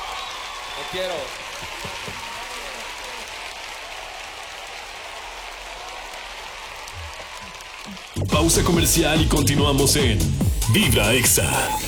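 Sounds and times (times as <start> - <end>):
dense applause of many hands clapping: 0.0 - 8.4
speech: 0.8 - 2.3, 8.4 - 11.8.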